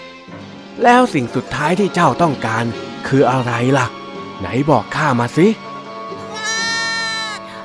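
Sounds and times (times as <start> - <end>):
speech: 0.8 - 5.6
lamb bleating in a long wavering cry: 6.2 - 7.4.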